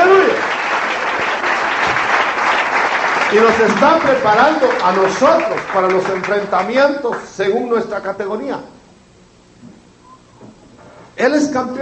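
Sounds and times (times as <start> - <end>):
church congregation applause during a Christian sermon: 0.0 - 7.3
speech: 3.3 - 8.8, 11.2 - 11.8.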